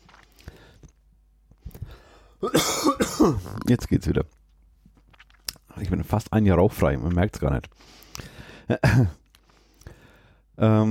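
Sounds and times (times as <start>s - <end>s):
short dry coughs: 2.4s - 3.6s, 8.7s - 9.2s
speech: 2.4s - 4.4s, 5.8s - 9.2s, 10.6s - 10.8s.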